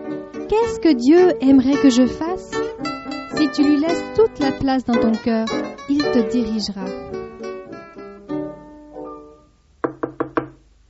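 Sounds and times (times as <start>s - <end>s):
speech: 0.5s - 2.6s, 3.4s - 7.2s
sustained musical tones: 0.6s - 8.6s
knocking on a door: 9.8s - 10.6s.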